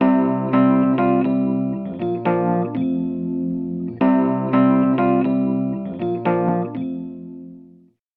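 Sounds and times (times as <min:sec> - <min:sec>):
electric piano: 0:00.0 - 0:07.8.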